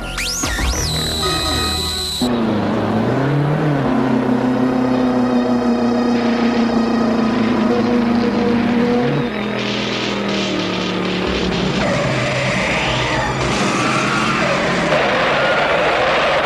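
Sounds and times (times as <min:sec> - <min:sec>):
race car engines revving and whining during a race: 0:01.1 - 0:16.4
crowd roaring: 0:11.3 - 0:16.4.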